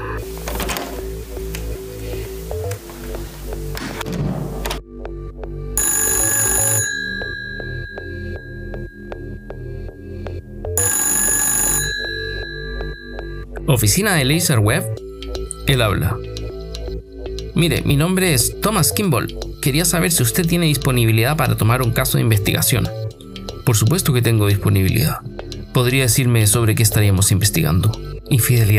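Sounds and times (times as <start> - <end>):
low music or ambient sound: 0.0 - 28.7
telephone ringing: 5.8 - 13.9
speech: 13.8 - 15.0, 15.7 - 16.3, 17.6 - 23.0, 23.7 - 28.7.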